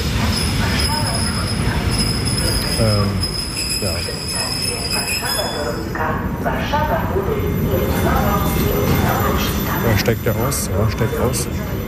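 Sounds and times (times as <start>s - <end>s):
rumble and rattle of a moving commuter train heard from inside a carriage: 0.0s - 11.8s
faint train wheel squeals: 0.4s - 5.8s
speech: 2.8s - 5.4s, 9.9s - 11.7s.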